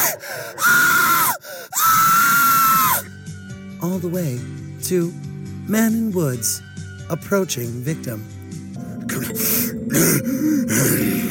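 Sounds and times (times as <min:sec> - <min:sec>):
girl screaming in a horror film sound effect: 0:00.0 - 0:03.1
speech: 0:03.9 - 0:08.4, 0:09.1 - 0:11.1.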